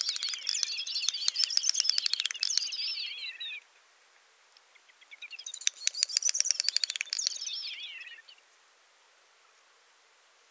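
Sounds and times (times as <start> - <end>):
great snipe calling with dry clicking and twittering whistles: 0.0 - 3.6, 5.2 - 8.4.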